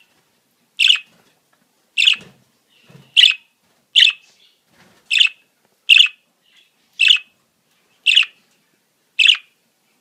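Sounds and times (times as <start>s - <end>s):
budgerigar chatter: 0.8s - 1.1s, 2.0s - 2.2s, 5.9s - 6.1s, 8.1s - 8.3s, 9.2s - 9.4s.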